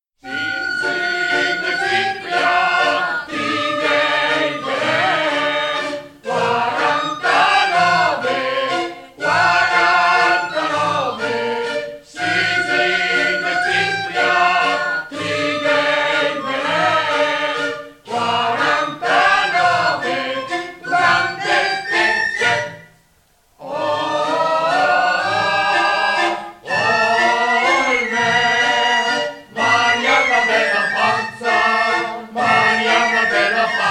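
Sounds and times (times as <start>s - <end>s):
choir singing: 0.2s - 22.9s, 23.6s - 33.8s
firlinfeu panpipe ensemble playing: 0.2s - 23.0s, 23.7s - 33.8s.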